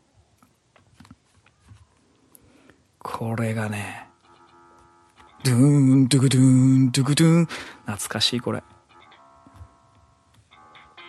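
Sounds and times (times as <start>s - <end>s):
speech: 3.0s - 4.0s, 5.4s - 8.7s
electronic telephone ring in video game intro: 4.1s - 5.6s, 8.6s - 11.0s.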